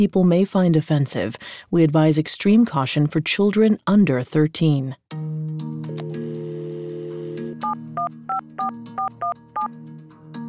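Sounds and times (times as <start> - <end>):
speech: 0.0 - 5.3
steady telephone dial tone: 5.9 - 9.7.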